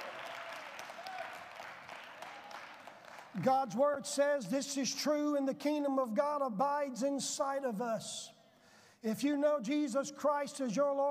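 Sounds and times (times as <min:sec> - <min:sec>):
congregation clapping hands in applause: 0:00.0 - 0:03.8
speech: 0:03.3 - 0:08.4, 0:09.0 - 0:11.0.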